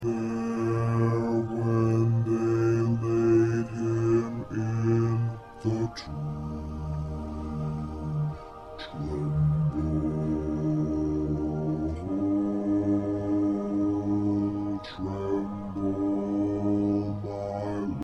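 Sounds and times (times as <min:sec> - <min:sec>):
bass: 0:00.0 - 0:18.0.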